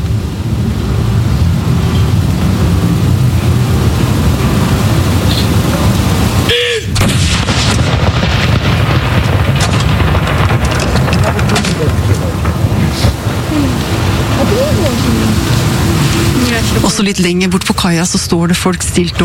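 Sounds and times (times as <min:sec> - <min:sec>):
outdoor noise: 0:00.0 - 0:19.2
ceremonial cannon salute firing: 0:06.9 - 0:14.6
speech: 0:17.2 - 0:19.2.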